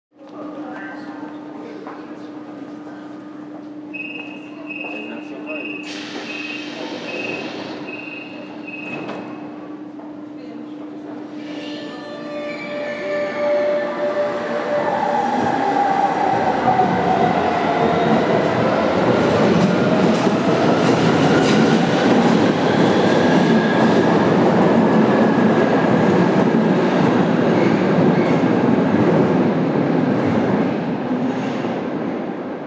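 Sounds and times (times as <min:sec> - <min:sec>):
S-Bahn train departing from platform: 0:00.3 - 0:32.6.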